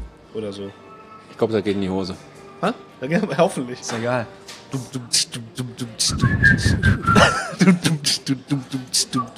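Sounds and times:
speech: 0:00.4 - 0:09.3
steady rhythmic beat: 0:04.8 - 0:09.3
people whistling a tune together: 0:06.0 - 0:07.6, 0:08.8 - 0:09.3
people chuckling: 0:06.7 - 0:09.3.

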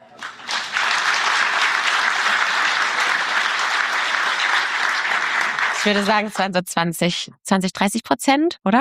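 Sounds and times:
large crowd audience clapping on request: 0:00.0 - 0:06.6
speech: 0:05.8 - 0:08.7.

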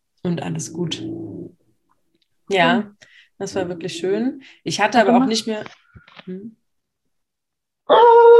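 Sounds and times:
speech: 0:00.2 - 0:01.3, 0:02.5 - 0:06.6, 0:07.9 - 0:08.3
dog growling: 0:00.5 - 0:01.6, 0:03.4 - 0:04.4.

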